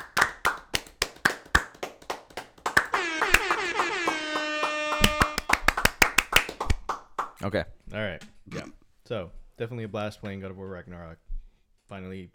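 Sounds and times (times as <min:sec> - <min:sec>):
long round of steady hand clapping: 0:00.0 - 0:07.4
bright rising horn-like tone: 0:02.7 - 0:05.7
speech: 0:07.4 - 0:11.3, 0:11.9 - 0:12.3.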